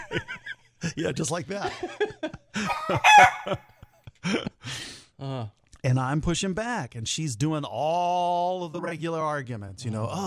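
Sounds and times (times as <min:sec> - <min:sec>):
laughter: 0:00.0 - 0:04.6
speech: 0:00.1 - 0:04.5, 0:05.2 - 0:10.2
rooster crowing: 0:02.7 - 0:03.6.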